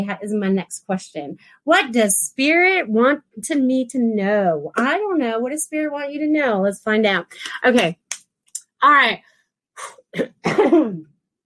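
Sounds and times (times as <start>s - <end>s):
speech: 0.0s - 8.0s, 8.8s - 11.1s
person clearing throat: 9.8s - 11.1s.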